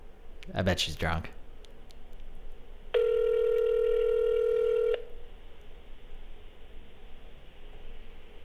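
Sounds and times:
speech: 0.5s - 1.4s
phone call ringback tone: 3.0s - 5.1s.

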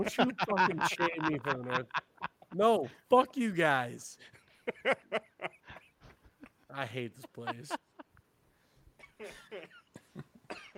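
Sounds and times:
laughter: 0.0s - 2.9s, 4.2s - 8.2s
speech: 0.0s - 5.6s, 6.8s - 7.9s
harsh coughs: 9.0s - 10.7s.

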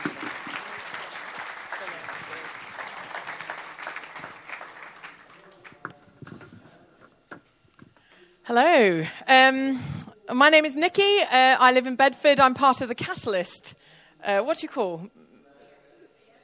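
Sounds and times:
audience applause welcoming a speaker: 0.0s - 6.1s
scattered sharper claps: 0.0s - 6.6s
speech: 8.5s - 15.2s.

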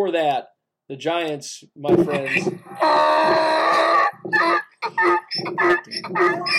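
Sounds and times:
speech: 0.0s - 6.5s
donkey bray sound effect: 2.1s - 6.5s.

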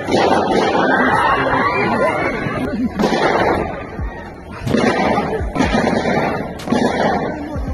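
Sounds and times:
automatic gunfire cracks: 0.0s - 1.1s, 3.0s - 3.8s, 4.6s - 7.6s
frightened crowd shouting and screaming: 0.0s - 7.7s
laughter: 0.5s - 5.8s.

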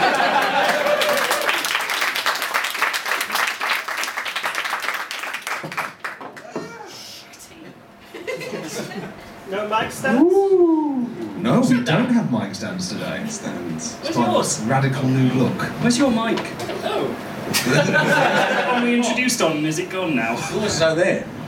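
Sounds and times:
people laughing: 0.0s - 1.5s, 8.0s - 9.4s, 16.8s - 19.3s
dense audience applause: 0.0s - 6.5s
speech: 9.7s - 10.6s, 11.5s - 21.4s.

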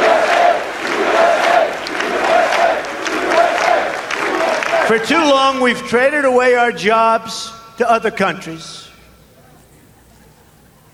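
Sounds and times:
large crowd cheering and roaring: 0.0s - 5.9s
speech: 4.9s - 8.9s.

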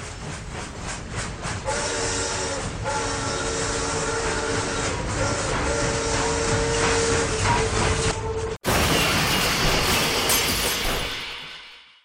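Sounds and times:
train roaring: 0.0s - 11.8s
train crash with shattering impact and crunching debris: 8.6s - 12.0s
long rising metallic screech of a train: 8.8s - 12.0s.

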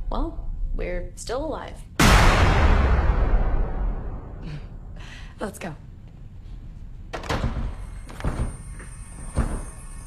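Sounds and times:
speech: 0.1s - 3.0s, 5.4s - 5.9s
door being broken with heavy splintering blows: 7.1s - 10.0s.

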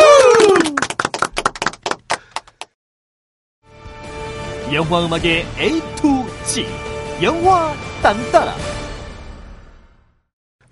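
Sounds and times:
hand clapping from a few people: 0.0s - 2.8s
music: 3.6s - 10.7s
speech: 4.7s - 8.7s.

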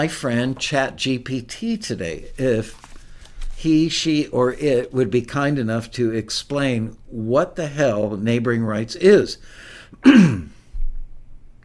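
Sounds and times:
speech: 0.0s - 2.9s, 3.6s - 10.5s
throat clearing: 10.0s - 10.6s.

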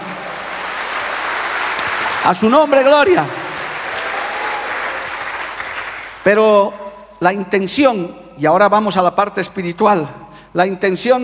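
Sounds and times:
audience applauding: 0.0s - 6.3s
speech: 2.2s - 3.4s, 6.2s - 11.2s.

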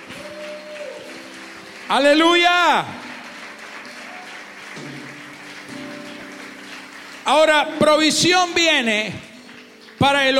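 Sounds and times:
large crowd applauding: 0.0s - 10.3s
speech: 1.9s - 3.0s, 7.3s - 9.2s, 10.0s - 10.3s.

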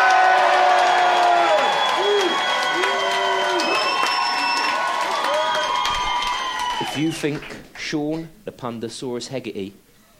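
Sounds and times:
large live crowd cheering, screaming and shouting: 0.0s - 7.2s
speech: 7.0s - 9.8s.

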